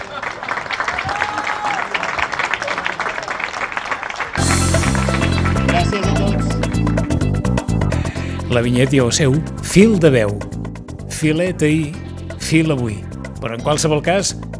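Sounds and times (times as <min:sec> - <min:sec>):
crowd applauding the winner of a xató-making contest: 0:00.0 - 0:06.7
loud music: 0:04.4 - 0:14.5
speech: 0:08.5 - 0:10.5, 0:11.2 - 0:14.5.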